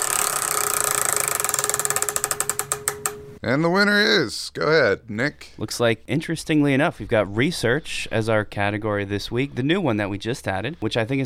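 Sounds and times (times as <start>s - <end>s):
prize wheel spinning with pointer ticking against pegs: 0.0s - 3.4s
speech: 3.4s - 11.2s.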